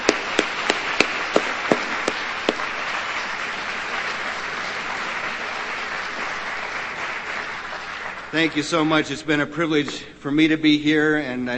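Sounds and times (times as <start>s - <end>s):
audience applauding for a conference committee: 0.0s - 9.1s
speech: 8.3s - 11.5s.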